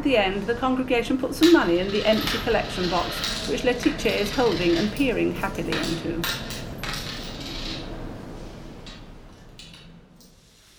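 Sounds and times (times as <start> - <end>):
speech: 0.0 - 6.6
metal utensils clinking and scraping a pot while stirring a maceration at a stove: 1.4 - 6.8.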